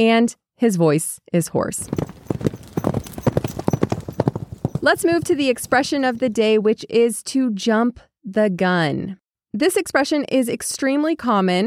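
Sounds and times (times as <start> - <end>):
speech: 0.0 - 2.2, 4.8 - 11.6
pony hooves clip-clopping on a hard surface: 1.7 - 6.6.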